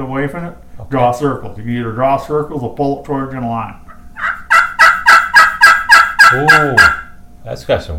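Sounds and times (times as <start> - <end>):
speech: 0.0 - 3.8, 6.3 - 7.9
raspy turkey yelps on a friction pot call: 3.8 - 7.2.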